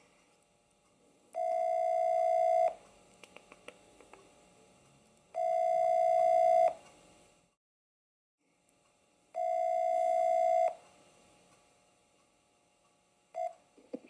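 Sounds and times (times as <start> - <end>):
telephone ringback tone on an outgoing call: 1.3 - 2.8, 5.4 - 6.8, 9.4 - 10.8, 13.4 - 13.6.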